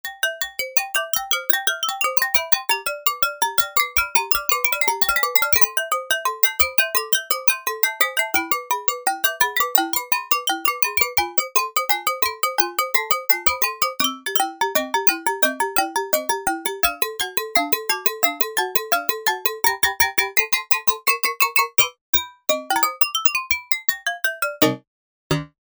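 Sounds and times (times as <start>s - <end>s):
music box: 0.1s - 24.8s
mallets: 24.6s - 25.5s.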